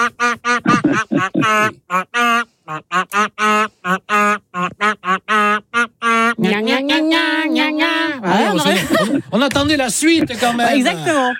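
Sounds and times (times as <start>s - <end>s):
laughter: 0.0s - 6.7s, 8.2s - 11.2s
pop melody sung in loud nasal duck quacks: 0.0s - 8.7s
speech: 1.5s - 2.4s, 9.5s - 11.3s.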